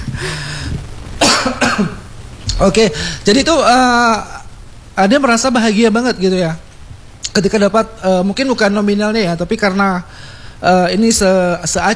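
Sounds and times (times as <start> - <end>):
person coughing: 0.0 - 2.1
speech: 2.6 - 4.4, 5.0 - 6.6, 7.4 - 11.9.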